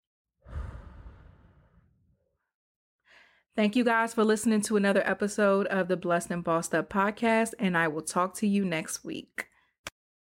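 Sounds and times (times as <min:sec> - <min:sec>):
deep sighing exhale during a relaxation exercise: 0:00.5 - 0:01.9
speech: 0:03.6 - 0:09.5.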